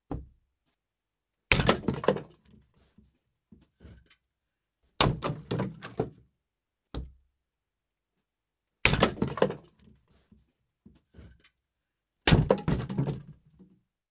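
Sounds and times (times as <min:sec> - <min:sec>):
axe: 0:01.5 - 0:02.4, 0:05.0 - 0:05.9, 0:08.8 - 0:09.7, 0:12.3 - 0:13.2.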